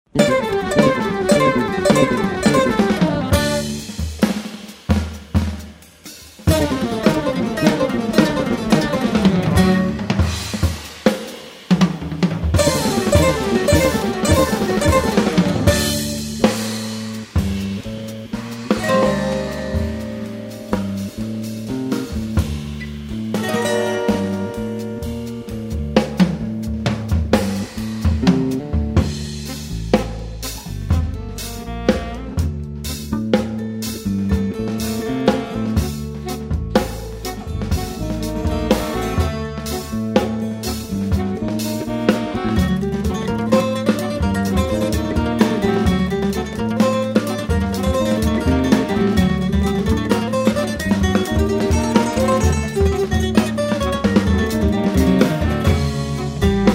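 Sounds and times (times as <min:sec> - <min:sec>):
drumming: 0:00.0 - 0:56.7.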